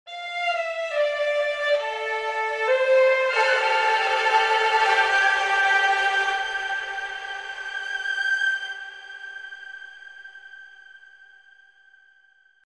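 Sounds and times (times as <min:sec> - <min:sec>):
gaohu ensemble sustaining legato thrills and swells with reverb: 0:00.2 - 0:07.9.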